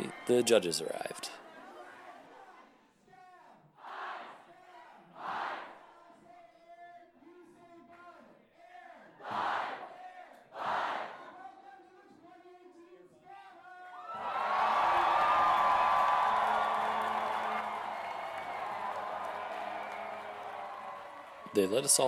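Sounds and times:
speech: 0:00.3 - 0:01.4, 0:21.6 - 0:22.0
crowd chanting: 0:03.8 - 0:04.4, 0:05.0 - 0:05.9, 0:09.2 - 0:11.2, 0:14.1 - 0:21.6.

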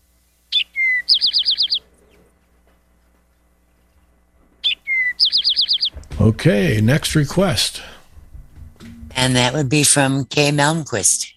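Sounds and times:
Eastern Towhee song in its drink your tea phrase: 0:00.3 - 0:02.3, 0:04.6 - 0:06.0
speech: 0:06.2 - 0:07.9, 0:09.2 - 0:11.3.

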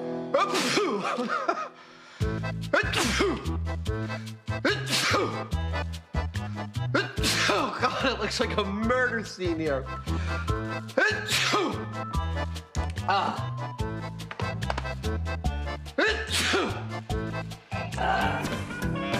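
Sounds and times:
person sneezing after snorting snuff: 0:00.3 - 0:01.8, 0:02.7 - 0:03.6, 0:04.6 - 0:05.6, 0:06.9 - 0:08.0, 0:10.9 - 0:11.9, 0:16.0 - 0:17.0
speech: 0:00.3 - 0:18.8
loud rhythmic music with a steady beat: 0:02.2 - 0:07.5, 0:11.7 - 0:19.1.

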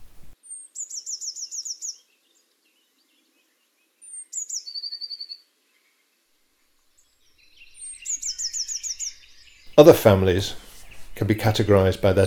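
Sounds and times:
blue tit singing high rapid trills: 0:00.4 - 0:05.5, 0:06.9 - 0:12.2
speech: 0:09.8 - 0:10.6, 0:11.2 - 0:12.2.

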